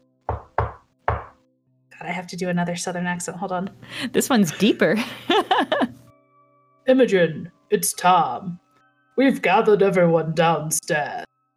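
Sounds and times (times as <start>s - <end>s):
solid knocks on a wooden door: 0.2s - 1.4s
speech: 2.0s - 6.0s, 6.9s - 8.6s, 9.2s - 11.3s
laughter: 5.0s - 5.9s.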